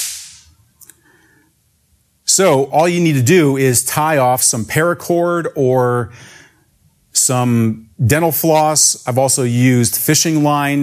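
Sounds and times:
tiny pull-string firecracker snap and hiss: 0:00.0 - 0:00.5
speech: 0:02.4 - 0:06.4, 0:07.2 - 0:10.8.

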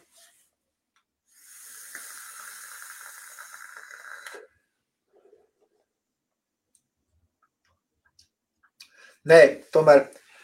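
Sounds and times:
air drawn through a vape using only the bottom airflow: 0:01.3 - 0:04.6
speech: 0:09.2 - 0:10.2.

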